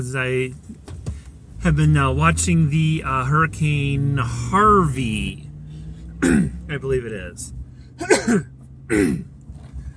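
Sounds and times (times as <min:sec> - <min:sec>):
speech: 0:00.0 - 0:00.7, 0:01.6 - 0:05.5, 0:06.2 - 0:09.3
person clearing throat with something caught in it: 0:06.2 - 0:06.6, 0:08.0 - 0:09.3.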